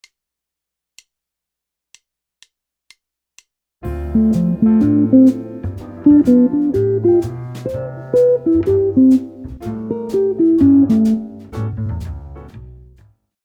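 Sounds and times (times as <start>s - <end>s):
easy jazz guitar arpeggios: 3.8s - 12.5s.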